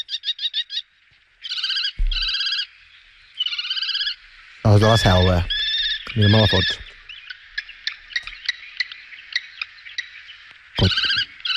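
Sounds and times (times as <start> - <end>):
kestrel calling: 0.0 - 11.5
low thump: 2.0 - 2.3
speech: 4.6 - 6.8, 10.8 - 11.1.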